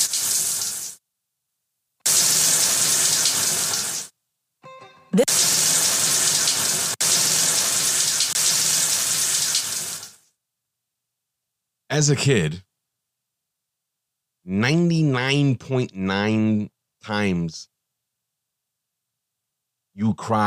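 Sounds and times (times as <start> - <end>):
shower water running: 0.0 - 1.0, 2.1 - 4.1, 5.2 - 10.2
speech: 12.0 - 12.7, 14.4 - 17.7, 20.0 - 20.4.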